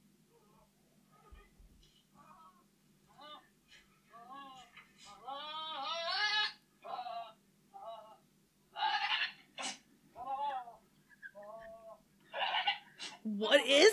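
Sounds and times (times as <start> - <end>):
goat screaming in human-like wailing cries: 5.2 - 7.4, 8.8 - 10.8, 12.3 - 13.2
speech: 13.4 - 13.9.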